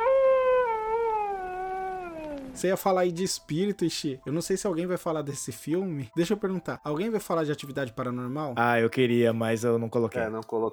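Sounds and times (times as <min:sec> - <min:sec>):
dog howling: 0:00.0 - 0:02.6
speech: 0:02.6 - 0:10.7.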